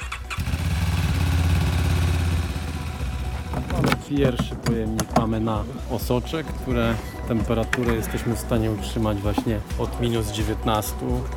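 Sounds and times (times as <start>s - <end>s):
motorcycle ambulance engine running: 0.0s - 4.4s
speech: 4.1s - 11.3s.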